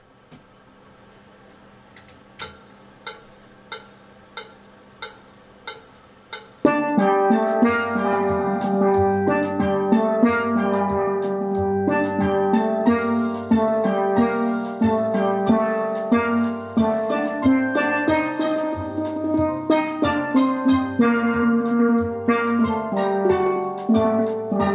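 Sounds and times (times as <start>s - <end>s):
steel band playing alto harmony in three voices with bass: 5.7s - 24.7s.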